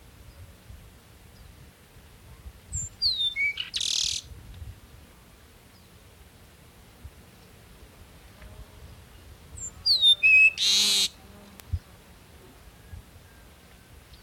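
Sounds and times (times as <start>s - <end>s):
low background hiss: 0.0s - 14.2s
Peruvian meadowlark Sturnella bellicosa singing: 9.9s - 11.1s.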